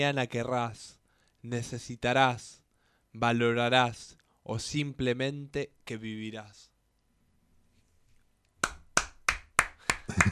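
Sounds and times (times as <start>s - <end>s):
speech: 0.0s - 6.7s
one person clapping alone: 8.6s - 10.3s.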